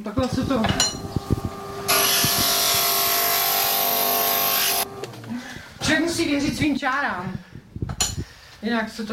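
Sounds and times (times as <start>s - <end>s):
speech: 0.0s - 1.1s, 6.2s - 7.5s, 8.6s - 9.1s
small glass grinder shaping a glass piece: 0.3s - 5.3s.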